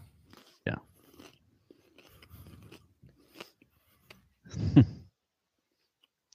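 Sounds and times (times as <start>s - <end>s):
chewing and crunching pizza topped with cornflakes: 0.0s - 4.4s
laughter: 4.5s - 5.1s
speech: 4.8s - 5.0s.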